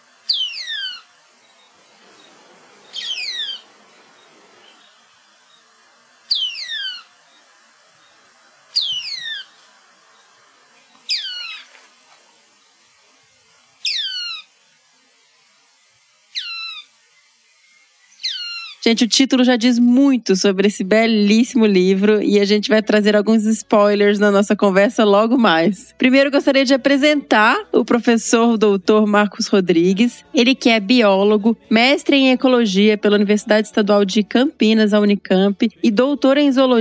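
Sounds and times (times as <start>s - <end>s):
Espinhaço cinclodes Cinclodes espinhacensis calling: 0.2s - 10.3s, 10.9s - 11.8s, 13.8s - 14.6s, 16.2s - 17.0s, 17.9s - 18.9s
speech: 18.8s - 36.7s.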